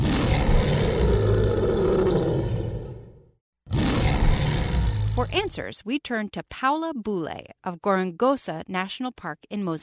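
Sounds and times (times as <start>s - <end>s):
lion roaring: 0.0s - 5.3s
speech: 5.2s - 9.8s.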